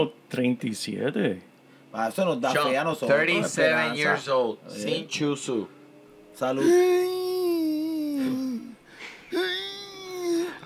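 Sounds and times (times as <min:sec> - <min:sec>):
speech: 0:00.0 - 0:05.8, 0:06.4 - 0:07.2
man imitating groans of an old man getting out of bed: 0:06.6 - 0:10.6.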